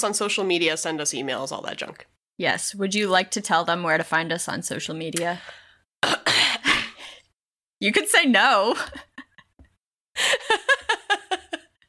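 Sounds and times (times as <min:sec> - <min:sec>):
speech: 0:00.0 - 0:06.4, 0:07.8 - 0:09.1
harsh raspy throat clearing: 0:06.0 - 0:06.9
laughter: 0:10.2 - 0:11.7.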